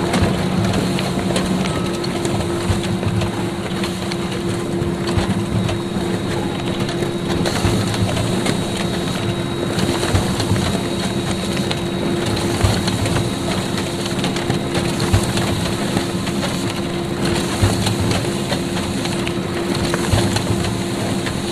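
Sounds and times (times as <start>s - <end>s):
laser printer and photocopier whirring: 0.0s - 21.5s.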